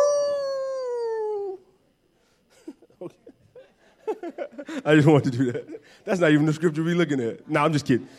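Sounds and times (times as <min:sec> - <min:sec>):
person imitating a dog's howl while reading scripture: 0:00.0 - 0:01.6
person chuckling: 0:02.5 - 0:04.9
speech: 0:03.0 - 0:03.4, 0:04.2 - 0:08.1.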